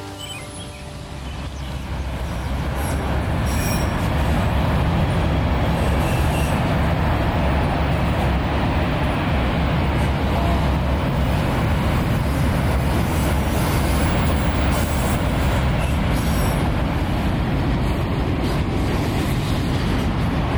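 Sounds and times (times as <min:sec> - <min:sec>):
passing train rail cars rumbling: 0:00.0 - 0:20.5.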